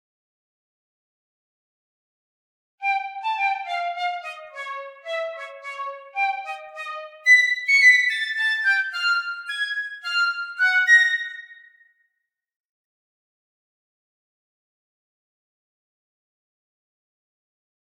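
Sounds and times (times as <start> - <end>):
flute stem of game music: 2.8 - 11.7.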